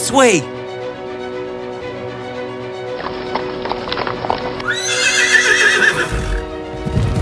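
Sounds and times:
speech: 0:00.1 - 0:00.6
horses galloping: 0:02.9 - 0:07.2
horse whinnying: 0:04.6 - 0:06.5.

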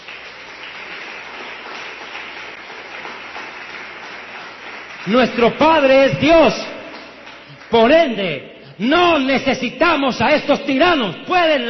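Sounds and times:
church congregation applauding: 0:00.0 - 0:09.3
speech: 0:05.0 - 0:06.7, 0:07.7 - 0:11.6.

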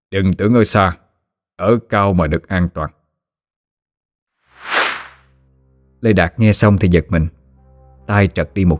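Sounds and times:
speech: 0:00.1 - 0:01.0, 0:01.6 - 0:03.0, 0:06.0 - 0:07.4, 0:08.1 - 0:08.7
arrow released from a bow whooshing away: 0:04.6 - 0:05.2.

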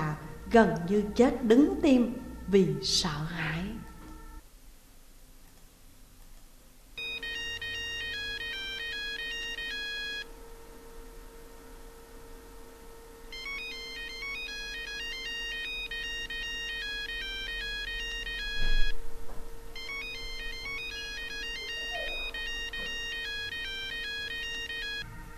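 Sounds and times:
speech: 0:00.5 - 0:03.7
iPhone ringtone playing a beeping electronic melody: 0:07.0 - 0:10.3, 0:13.3 - 0:18.9, 0:19.8 - 0:25.3.

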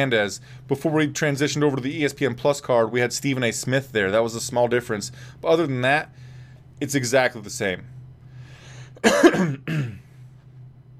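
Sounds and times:
speech: 0:00.0 - 0:06.2, 0:06.8 - 0:08.0, 0:09.0 - 0:09.9
low steady hum: 0:00.0 - 0:10.9
person coughing harshly: 0:09.0 - 0:10.1.

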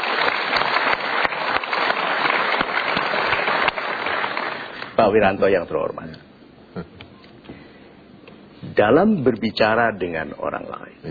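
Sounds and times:
audience applause: 0:00.0 - 0:05.0
speech: 0:05.0 - 0:06.2, 0:08.8 - 0:11.0.

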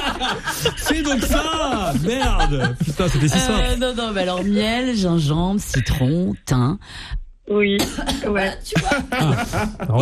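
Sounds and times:
laughter: 0:00.0 - 0:04.8, 0:08.7 - 0:10.0
speech: 0:00.5 - 0:10.0
woman coughing after drinking a homemade honey ginger lemon thyme elixir: 0:07.8 - 0:09.1.

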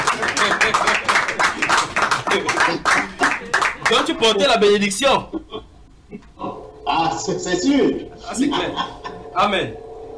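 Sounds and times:
congregation clapping during a church service: 0:00.0 - 0:04.6
laughter: 0:00.0 - 0:06.6, 0:08.2 - 0:09.4
speech: 0:04.2 - 0:05.4, 0:06.9 - 0:09.8.

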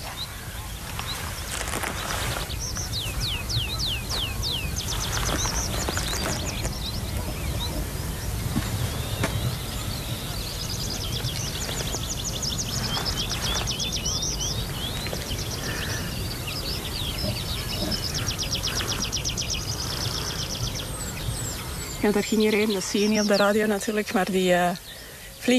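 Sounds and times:
steady low rumble: 0:00.0 - 0:24.8
tree pipit song: 0:00.0 - 0:25.5
speech: 0:22.1 - 0:24.8.

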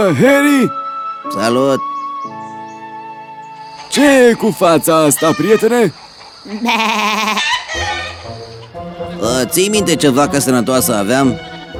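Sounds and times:
speech: 0:00.0 - 0:01.9, 0:03.9 - 0:07.5, 0:09.2 - 0:11.5
sheep bleating: 0:05.0 - 0:05.9, 0:06.5 - 0:08.2.

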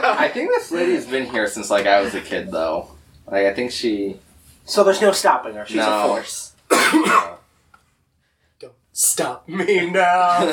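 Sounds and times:
laughter: 0:00.0 - 0:02.3, 0:09.7 - 0:10.5
speech: 0:00.2 - 0:07.4, 0:08.6 - 0:10.5
person coughing harshly: 0:06.7 - 0:07.4.

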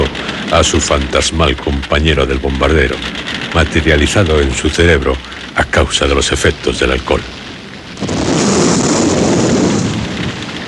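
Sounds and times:
speech: 0:00.5 - 0:07.4
explosion jolting a car: 0:07.9 - 0:10.6.

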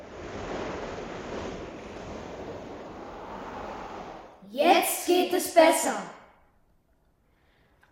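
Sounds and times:
ocean water rushing over the sea: 0:00.0 - 0:04.4
wind roaring over the sea: 0:00.0 - 0:04.6
speech: 0:05.3 - 0:06.2.

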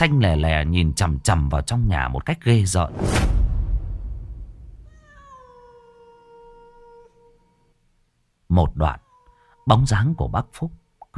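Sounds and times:
speech: 0:00.0 - 0:03.4, 0:08.5 - 0:09.0, 0:09.6 - 0:11.1
low rumble: 0:02.8 - 0:05.1
cat held in a man's arms meowing in a banana garden: 0:04.8 - 0:07.6, 0:09.0 - 0:09.9.

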